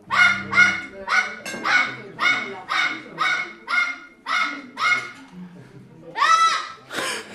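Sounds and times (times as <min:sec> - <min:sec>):
parrot mimicking a dog's barking: 0:00.0 - 0:05.1.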